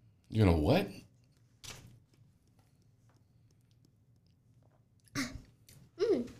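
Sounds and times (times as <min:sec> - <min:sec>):
speech: 0:00.3 - 0:01.1
person chewing and biting into food: 0:02.3 - 0:05.8.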